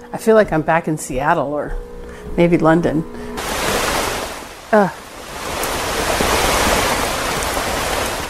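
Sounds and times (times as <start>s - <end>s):
speech: 0.1s - 3.2s, 4.7s - 5.0s
steady morning rain falling: 3.4s - 8.2s.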